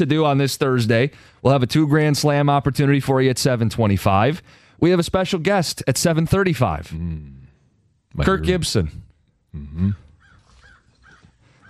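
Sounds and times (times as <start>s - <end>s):
speech: 0.0s - 7.4s, 8.1s - 10.0s
crow cawing: 10.1s - 11.6s.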